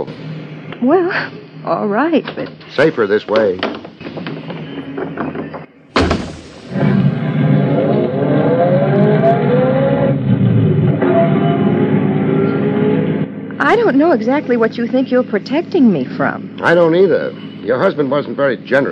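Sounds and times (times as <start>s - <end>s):
speech: 0.8s - 3.7s, 13.7s - 18.9s
car engine starting and revving as the car drives away: 6.0s - 14.9s.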